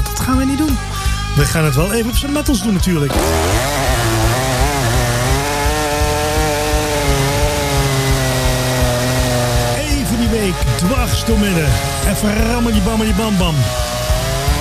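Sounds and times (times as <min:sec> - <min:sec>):
speech: 0:00.3 - 0:04.2, 0:10.5 - 0:13.9
chainsaw cutting through wood: 0:03.1 - 0:14.5.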